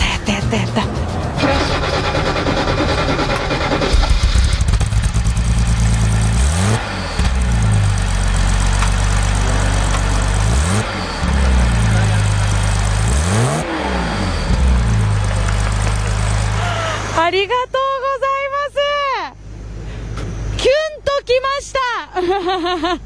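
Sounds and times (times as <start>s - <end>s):
Mercedes-Benz 250SL engine throttle blips: 0.0s - 17.3s
Mercedes-Benz 250SL engine cranking, starting and idling: 0.0s - 20.8s
laughter: 22.2s - 23.0s.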